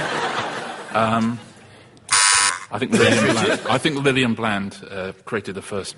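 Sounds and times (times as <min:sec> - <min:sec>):
people chattering and chuckling: 0:00.0 - 0:01.8, 0:02.7 - 0:03.9
speech: 0:01.0 - 0:01.5, 0:02.7 - 0:05.9
loud harsh electronic quiz buzzer: 0:02.1 - 0:02.8.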